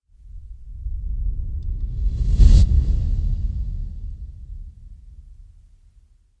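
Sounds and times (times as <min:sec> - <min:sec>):
cinematic fast whoosh blow: 0:01.7 - 0:05.5.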